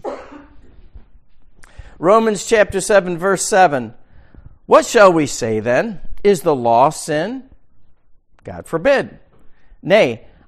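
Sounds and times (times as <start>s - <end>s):
single sharp sneeze or cough in a room: 0.0s - 0.8s
speech: 2.0s - 4.0s, 4.7s - 7.5s, 8.4s - 9.2s, 9.8s - 10.3s.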